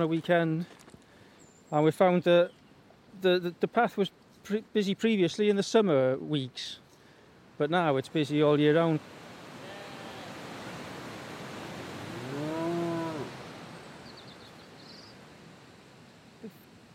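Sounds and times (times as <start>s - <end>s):
speech: 0.0s - 0.8s, 1.7s - 2.6s, 3.2s - 6.8s, 7.6s - 9.2s
Welsh Black cow mooing in a field: 12.0s - 13.4s.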